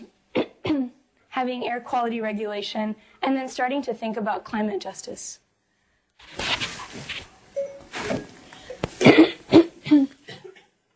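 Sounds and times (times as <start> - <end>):
audience member coughing: 0.3 - 0.9, 9.0 - 10.7
speech: 1.4 - 5.4.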